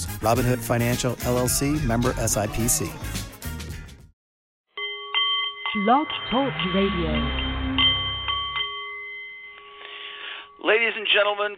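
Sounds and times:
speech: 0:00.2 - 0:03.2, 0:05.8 - 0:07.5, 0:10.7 - 0:11.5
Nepalese metal meditation singing bowl ringing: 0:04.8 - 0:10.7.

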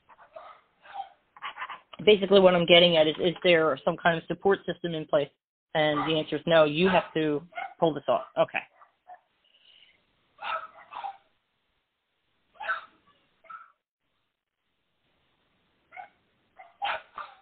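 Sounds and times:
dogs barking: 0:00.1 - 0:01.2, 0:05.9 - 0:06.2, 0:06.8 - 0:09.3, 0:10.4 - 0:11.3, 0:12.6 - 0:13.8, 0:15.9 - 0:17.3
speech: 0:02.0 - 0:08.7.

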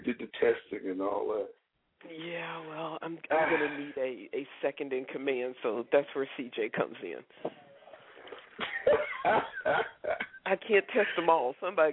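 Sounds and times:
speech: 0:00.5 - 0:07.6, 0:08.6 - 0:11.9
woman coughing while laughing: 0:08.6 - 0:11.4.

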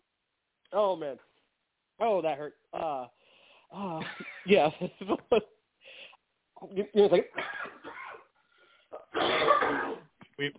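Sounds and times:
speech: 0:00.7 - 0:01.3, 0:02.0 - 0:05.6, 0:06.6 - 0:07.6, 0:10.4 - 0:10.5
person coughing harshly while trying to control the cough: 0:07.4 - 0:08.3, 0:09.0 - 0:10.1.

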